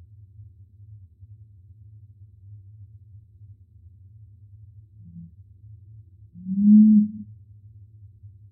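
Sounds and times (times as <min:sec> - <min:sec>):
constant low drone: 0:06.4 - 0:07.3
curassow song with long resonant booming hum: 0:06.4 - 0:07.3.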